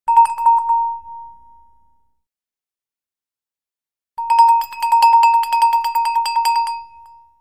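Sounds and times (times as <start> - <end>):
cow bells ringing from a head shake: 4.2 - 7.2.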